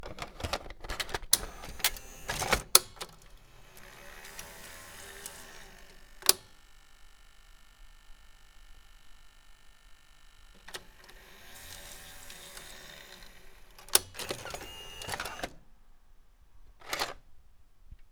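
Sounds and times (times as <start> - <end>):
tape ejecting from Sony UVW tape deck: 0.2 - 6.5, 10.6 - 15.6.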